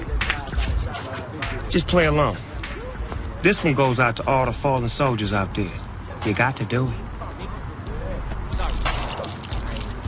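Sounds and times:
faint voices murmuring: 0.0s - 10.0s
speech: 1.7s - 2.5s, 3.4s - 7.0s
liquor pouring in a splashing stream: 8.6s - 10.0s.

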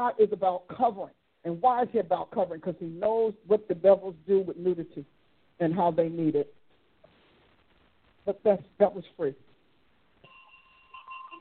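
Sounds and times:
speech: 0.0s - 6.6s, 8.2s - 9.5s
bell ringing with sustained tone: 10.2s - 11.3s.

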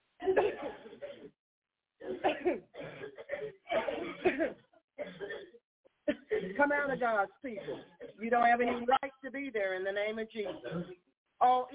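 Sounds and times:
crowd of people coughing at once: 0.2s - 1.4s, 2.0s - 6.6s, 10.5s - 11.1s
speech: 6.9s - 11.7s.

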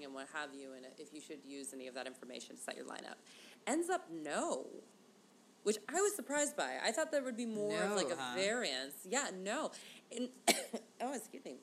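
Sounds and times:
speech: 0.0s - 5.0s, 5.6s - 11.6s
sharp cough: 10.5s - 10.8s.

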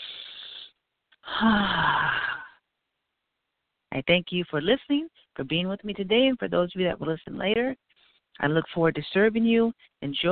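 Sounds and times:
deep breath in and out during a guided meditation: 0.0s - 2.5s
speech: 4.0s - 10.3s.

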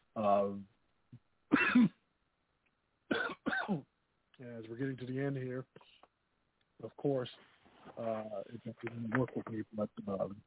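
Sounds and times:
speech: 0.2s - 2.0s, 3.7s - 6.1s, 6.8s - 10.4s
person coughing: 1.5s - 2.0s, 3.1s - 3.8s.

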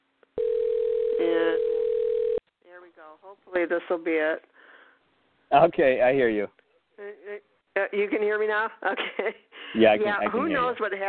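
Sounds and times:
telephone dial tone: 0.4s - 2.4s
speech: 3.2s - 4.5s, 5.5s - 11.0s.

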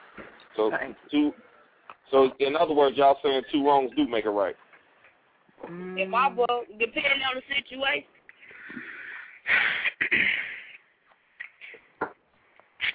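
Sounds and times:
speech: 0.6s - 1.5s, 2.1s - 4.6s, 5.6s - 8.2s, 9.5s - 10.5s
woman clearing her throat with raspy grunts and breathy hacks: 9.9s - 10.5s.

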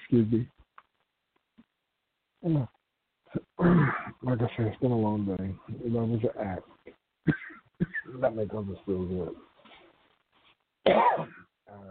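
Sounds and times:
speech: 0.1s - 0.6s, 2.4s - 7.4s, 8.1s - 9.5s, 10.9s - 11.8s
short hoarse cough from someone with a cold: 3.6s - 4.2s, 7.2s - 8.1s, 10.8s - 11.5s.

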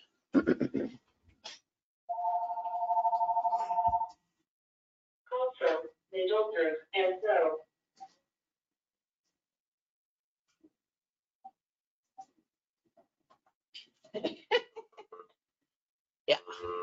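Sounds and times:
laughter: 0.4s - 1.0s, 14.2s - 15.1s
person talking: 0.4s - 1.0s, 5.3s - 7.6s, 16.3s - 16.8s
landline phone ringing with an electronic trill: 2.1s - 4.1s.

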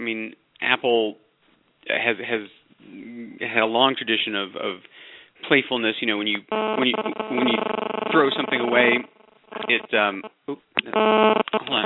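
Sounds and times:
speech: 0.0s - 1.2s, 1.8s - 11.8s
man speaking over a narrow telephone-quality connection: 6.4s - 11.8s
buzzing tonal feedback on a phone line: 6.5s - 10.3s, 11.0s - 11.8s.

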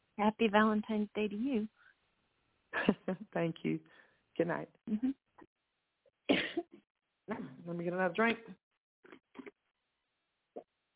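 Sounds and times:
speech: 0.2s - 1.8s, 2.8s - 5.2s, 7.3s - 8.6s
faint breathy sounds: 3.8s - 4.3s
person coughing harshly: 6.3s - 6.7s
soft throat noise: 9.0s - 9.7s.

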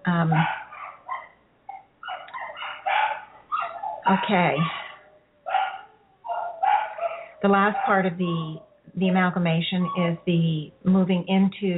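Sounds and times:
speech: 0.1s - 0.6s, 4.1s - 4.8s, 7.4s - 11.7s
dog barking and yipping: 0.3s - 8.2s.

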